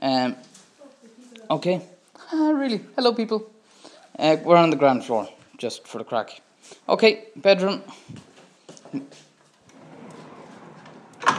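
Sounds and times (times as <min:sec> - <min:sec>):
speech: 0:01.5 - 0:02.0, 0:02.6 - 0:03.5, 0:04.2 - 0:08.2, 0:08.9 - 0:09.2
large heavy double doors creaking open: 0:09.7 - 0:11.3.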